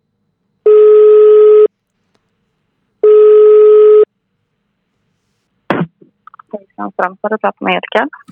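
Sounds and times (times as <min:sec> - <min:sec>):
telephone ringback tones while calling: 0:00.7 - 0:01.7, 0:03.0 - 0:04.1
speech: 0:06.8 - 0:08.2.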